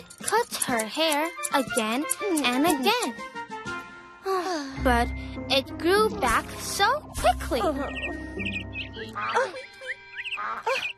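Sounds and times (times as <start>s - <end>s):
speech: 0.0s - 3.4s, 4.3s - 8.6s, 9.2s - 9.7s
ducks quacking: 7.8s - 10.9s
high bird chirps and tweets: 7.8s - 10.9s.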